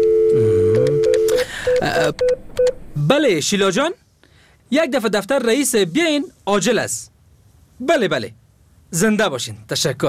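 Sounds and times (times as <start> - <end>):
telephone dial tone in an office: 0.0 - 2.7
speech: 1.9 - 4.0, 4.7 - 7.1, 7.8 - 10.0.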